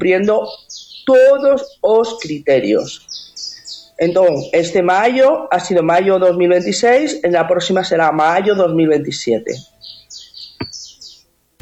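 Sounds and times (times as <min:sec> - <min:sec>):
speech: 0:00.0 - 0:03.2, 0:04.0 - 0:09.7
birds chirping outdoors near a home: 0:00.0 - 0:11.6.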